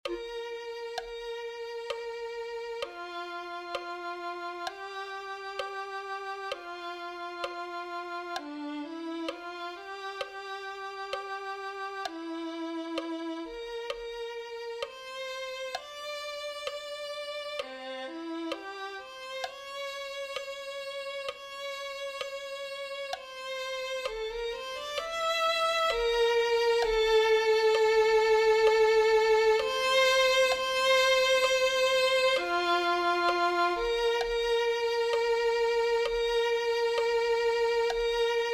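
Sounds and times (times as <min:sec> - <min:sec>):
violin: 0:00.0 - 0:38.5.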